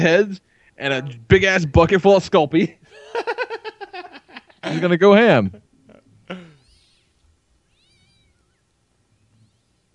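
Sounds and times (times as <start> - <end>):
speech: 0.0 - 3.3, 4.6 - 5.6
laughter: 2.9 - 5.6
canned alley cat meow sound effect: 6.6 - 9.9.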